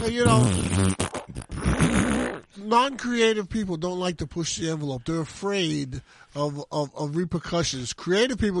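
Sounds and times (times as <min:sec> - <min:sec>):
loud buzzy farting from a movie campfire scene: 0:00.0 - 0:02.5
speech: 0:00.1 - 0:01.0, 0:02.6 - 0:08.5.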